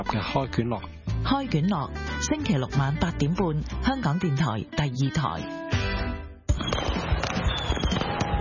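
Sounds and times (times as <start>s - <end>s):
speech: 0.0s - 5.6s
fireworks exploding in booms and crackling pops: 6.5s - 8.4s.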